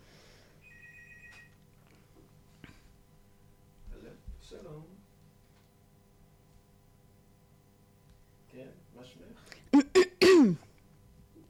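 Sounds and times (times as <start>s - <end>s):
short high electronic telephone ring tone of an incoming call: 0.6s - 1.6s.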